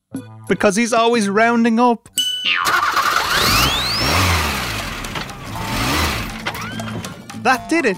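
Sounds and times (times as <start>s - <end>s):
speech: 0.4s - 3.0s, 7.4s - 7.9s
car engine starting and revving: 2.7s - 7.3s.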